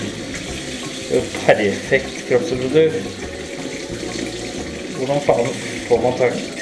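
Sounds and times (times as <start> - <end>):
water at 37 degrees running from a tap: 0.0 - 6.5
speech: 1.1 - 3.4, 5.0 - 6.5.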